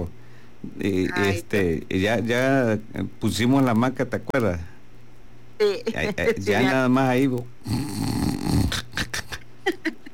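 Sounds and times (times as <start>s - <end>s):
speech: 0.0s - 4.7s, 5.6s - 8.5s
person snoring while dozing in a hammock: 7.6s - 9.3s.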